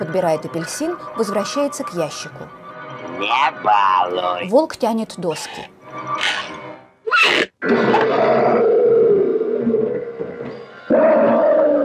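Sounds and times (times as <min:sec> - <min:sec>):
speech: 0:00.0 - 0:02.6, 0:03.2 - 0:06.6, 0:07.2 - 0:08.5
lion roaring as it emerges from a wooden crate: 0:06.2 - 0:11.8.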